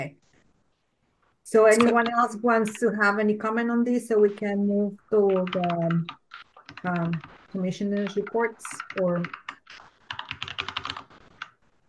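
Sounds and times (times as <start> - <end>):
speech: 1.5 - 6.2, 6.8 - 9.8
fast typing on a computer keyboard during a commission meeting: 1.6 - 3.3, 5.1 - 11.6.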